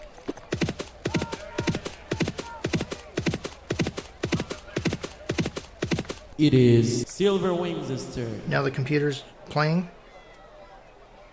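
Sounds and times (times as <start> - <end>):
horse hoofbeats sound effect from a computer horse racing game: 0.5 - 6.3
speech: 6.4 - 10.0.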